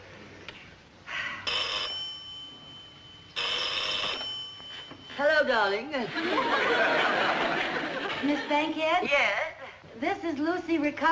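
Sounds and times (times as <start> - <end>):
Western Electric telephone bell ringing: 1.5 - 5.5
speech: 5.2 - 11.0
laughter: 6.0 - 8.7.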